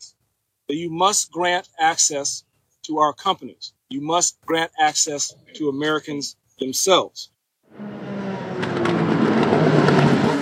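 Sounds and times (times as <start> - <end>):
speech: 0.7 - 7.9
Indy race car engines roaring: 7.7 - 10.4.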